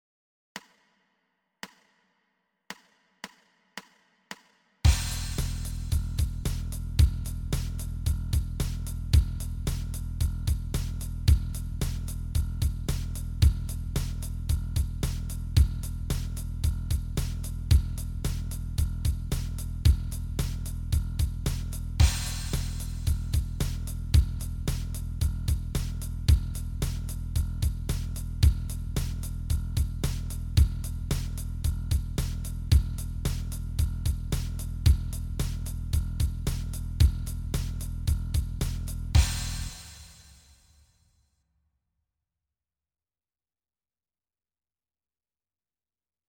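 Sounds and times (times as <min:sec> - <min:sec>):
bass open E string: 0:04.9 - 0:39.9.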